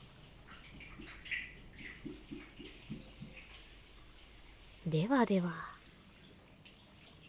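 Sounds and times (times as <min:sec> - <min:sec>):
sake glugging from a small flask into a small sake cup: 0:00.4 - 0:04.8
speech: 0:04.9 - 0:05.7.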